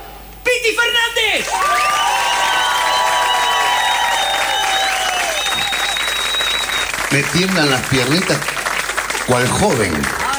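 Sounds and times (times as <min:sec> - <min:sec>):
speech: 0:00.6 - 0:02.0, 0:07.1 - 0:08.6, 0:09.3 - 0:10.3
crowd cheering: 0:01.4 - 0:10.3
large audience applauding: 0:01.4 - 0:10.3
whistles from audience: 0:01.6 - 0:07.0.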